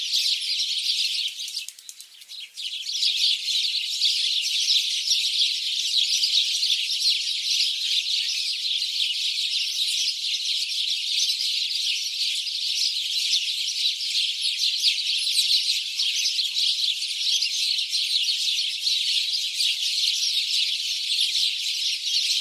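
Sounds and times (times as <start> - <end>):
house sparrows Passer domesticus chirping: 0.0 - 22.3.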